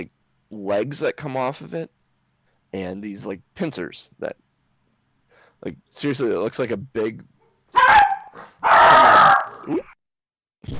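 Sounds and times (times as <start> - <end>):
speech: 0.0 - 2.0, 2.7 - 4.4, 5.6 - 9.9
puppy barking: 7.7 - 9.6.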